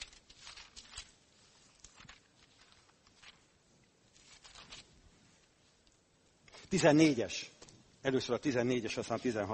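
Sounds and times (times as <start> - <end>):
thin Bible pages being turned and flipped: 0.0 - 5.9
speech: 6.7 - 9.5.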